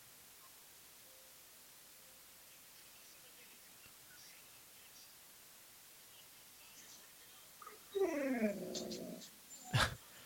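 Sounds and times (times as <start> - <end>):
female dog whining: 7.6 - 10.0.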